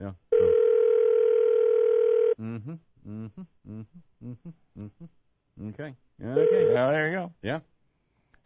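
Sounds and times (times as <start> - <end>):
electronic telephone ring tone of an outgoing call: 0.3 - 2.4, 6.4 - 7.0
person talking: 5.6 - 7.3.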